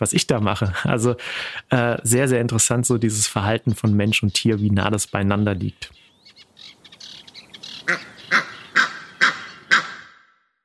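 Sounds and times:
speech: 0.0s - 6.0s
scattered bird chatter: 3.1s - 10.1s
ducks or geese honking at a pond: 7.7s - 10.2s.

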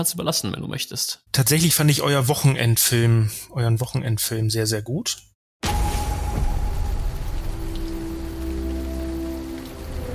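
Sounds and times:
speech: 0.0s - 5.3s
rain falling in an Eifel village in late May: 5.6s - 10.1s.

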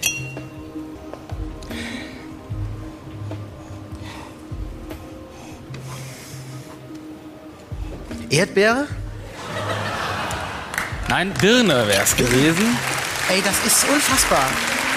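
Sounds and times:
glass jar clinking and knocking against a hard surface: 0.0s - 0.5s
speech: 8.3s - 9.0s, 11.1s - 14.8s
laughter: 9.3s - 11.1s.

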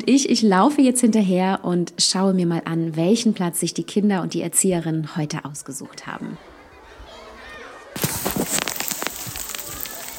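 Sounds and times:
speech: 0.0s - 6.5s
light hail and rain falling in a forest: 8.0s - 10.1s.

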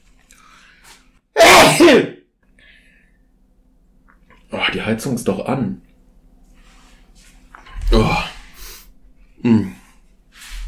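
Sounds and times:
person sneezing: 1.4s - 2.1s
speech: 4.7s - 5.9s.

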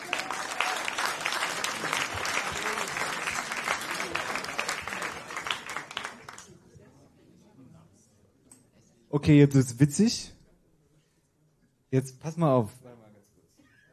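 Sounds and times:
crowd applause: 0.0s - 6.5s
speech: 9.1s - 10.3s, 11.9s - 12.9s.

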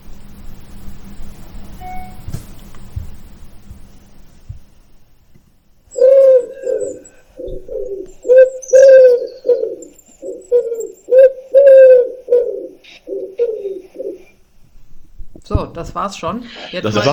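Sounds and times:
wood pigeon cooing: 5.9s - 14.4s
speech: 15.8s - 17.1s
laughter: 16.6s - 17.1s.

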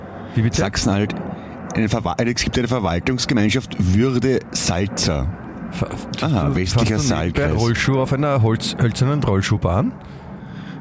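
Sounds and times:
airplane flying overhead: 0.0s - 10.7s
speech: 0.3s - 10.2s.

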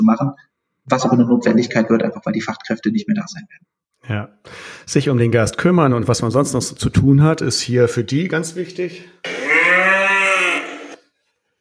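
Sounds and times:
speech: 0.0s - 10.0s
cow mooing: 9.2s - 11.0s.

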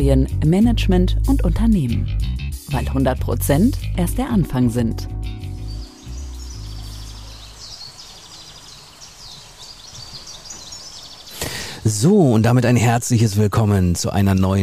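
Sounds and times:
speech: 0.0s - 5.4s, 11.9s - 14.6s
birds chirping and twittering outdoors: 4.0s - 12.9s.

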